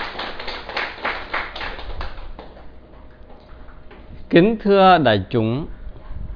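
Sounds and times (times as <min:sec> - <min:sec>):
crowd applauding: 0:00.0 - 0:02.7
speech: 0:04.3 - 0:05.8.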